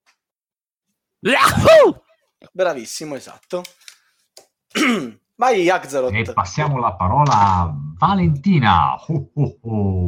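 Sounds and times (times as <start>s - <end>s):
exaggerated theatrical sneeze: 1.2s - 2.0s, 4.8s - 5.2s
speech: 1.2s - 3.9s, 4.8s - 10.0s.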